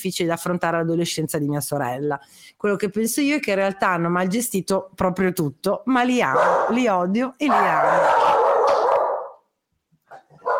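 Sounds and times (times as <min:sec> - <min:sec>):
speech: 0:00.0 - 0:08.9
dogs barking: 0:06.3 - 0:06.9, 0:07.5 - 0:09.4, 0:10.1 - 0:10.5.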